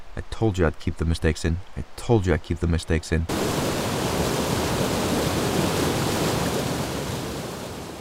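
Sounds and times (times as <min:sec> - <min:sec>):
speech: 0:00.2 - 0:03.6
fast-flowing river water in a gorge: 0:03.3 - 0:07.9.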